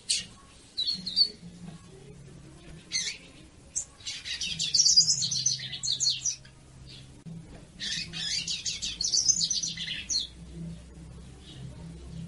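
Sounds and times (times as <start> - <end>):
female Yellow-bellied seedeater singing: 0.0 - 1.4, 2.8 - 7.2, 7.8 - 10.4
faint low hum: 0.0 - 12.2.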